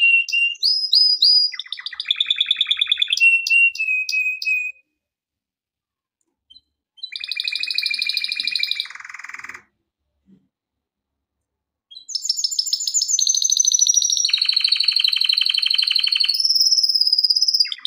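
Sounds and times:
canary singing varied phrases: 0:00.0 - 0:04.9, 0:06.5 - 0:09.7, 0:11.9 - 0:17.8.

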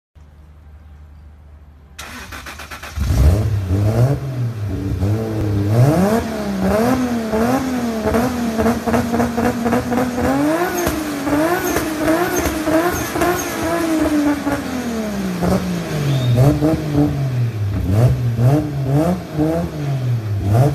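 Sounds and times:
Toyota Supra car: 0:00.2 - 0:20.7.

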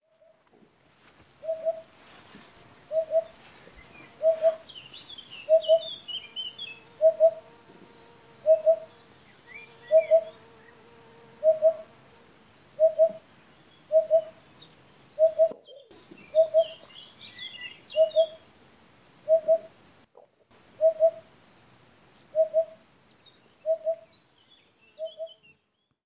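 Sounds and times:
Eurasian Hoopoe calling: 0:01.0 - 0:07.5, 0:08.4 - 0:10.4, 0:11.4 - 0:11.9, 0:12.8 - 0:13.2, 0:13.9 - 0:14.4, 0:15.2 - 0:18.4, 0:19.2 - 0:19.7, 0:20.8 - 0:21.3, 0:22.3 - 0:22.8, 0:23.6 - 0:24.1.

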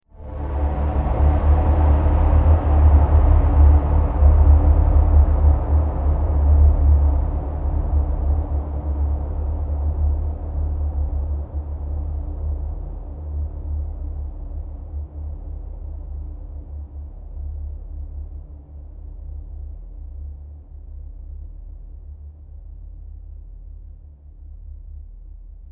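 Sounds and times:
heavy dark sound: 0:00.1 - 0:14.2.

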